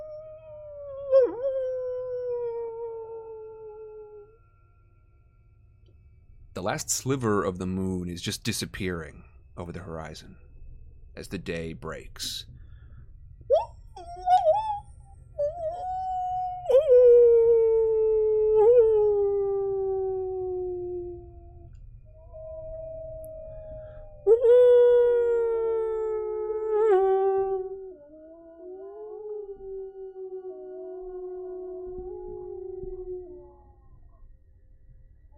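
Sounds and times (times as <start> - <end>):
wolves howling at daybreak: 0.0 - 4.4, 13.5 - 34.1
faint low rumble: 0.0 - 35.3
speech: 6.6 - 10.5, 11.2 - 12.5
wolves yipping: 13.5 - 15.0.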